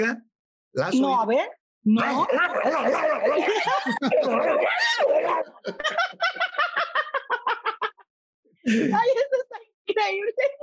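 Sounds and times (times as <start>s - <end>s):
speech: 0.0s - 7.2s, 8.6s - 10.6s
rhythmic bursts of laughter: 2.0s - 4.8s, 5.6s - 8.0s
voice mimicking a dog fight with snarls, yelps and growls: 2.0s - 5.5s.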